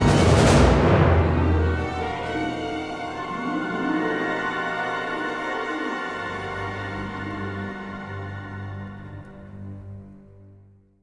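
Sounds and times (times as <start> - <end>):
battle lose music: 0.0 - 7.9.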